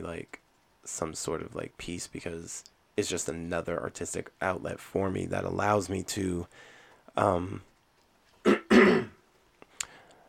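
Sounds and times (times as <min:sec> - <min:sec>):
speech: 0:00.0 - 0:07.7
harsh rasping coughs from allergies: 0:08.4 - 0:09.2
voiced throat clearing from allergies: 0:08.4 - 0:09.2.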